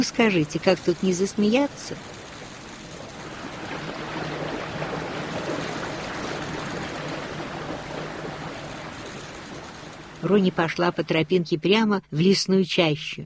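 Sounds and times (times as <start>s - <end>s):
speech: 0.0s - 2.2s, 10.2s - 13.2s
river rushing: 0.0s - 10.6s.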